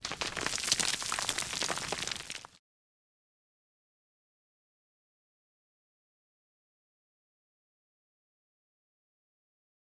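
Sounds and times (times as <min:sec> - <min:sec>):
rockslide: 0:00.0 - 0:02.6.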